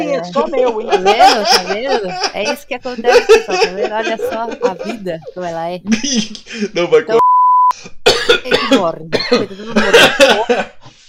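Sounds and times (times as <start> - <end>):
laughter: 0.0 - 7.2, 9.3 - 10.8
speech: 0.2 - 7.2, 7.8 - 10.8
person coughing: 1.3 - 5.1, 8.0 - 10.8
short electronic beep: 7.2 - 7.8.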